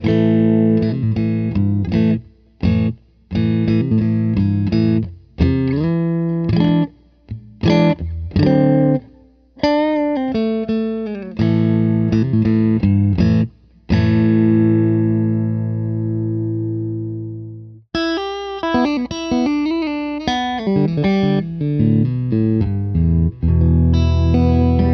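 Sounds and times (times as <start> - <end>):
clean electric guitar on middle pickups: 0.0 - 24.9.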